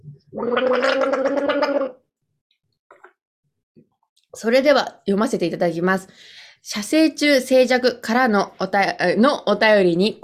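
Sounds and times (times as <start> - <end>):
person gargling water: 0.3 - 2.1
speech: 4.4 - 10.2.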